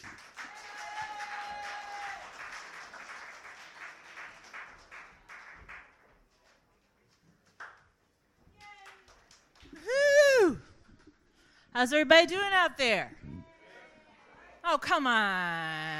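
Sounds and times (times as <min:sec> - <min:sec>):
crowd applauding at an open mic night: 0:00.0 - 0:06.1, 0:08.6 - 0:10.6
whooping cheer: 0:00.4 - 0:02.4, 0:09.7 - 0:10.7
speech: 0:11.8 - 0:13.2, 0:14.7 - 0:15.9.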